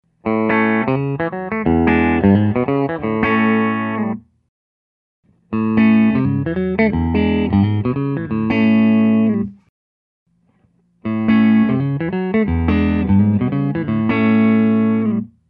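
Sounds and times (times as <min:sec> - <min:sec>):
hollow-body electric guitar pickups: 0:00.2 - 0:04.2, 0:05.5 - 0:09.6, 0:11.0 - 0:15.3.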